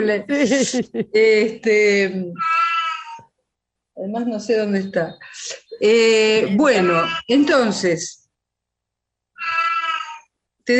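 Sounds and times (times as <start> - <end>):
speech: 0.0 - 2.6, 4.0 - 8.2
laughter: 0.3 - 1.5
cat meowing: 2.4 - 3.3, 6.6 - 7.4, 9.4 - 10.3.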